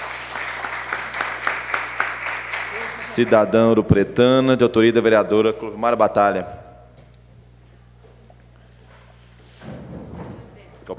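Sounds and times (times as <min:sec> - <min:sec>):
crowd clapping at a municipal council session for an honorary citizen: 0:00.0 - 0:03.8
low constant hum: 0:00.0 - 0:10.9
speech: 0:03.2 - 0:06.6.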